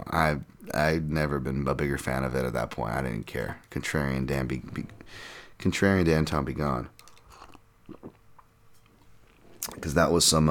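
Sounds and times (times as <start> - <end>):
speech: 0.1 - 7.0, 9.8 - 10.4
soft swallowing gulps: 6.9 - 9.9
wet mouth noises: 6.9 - 9.9
person sipping coffee: 7.0 - 9.9.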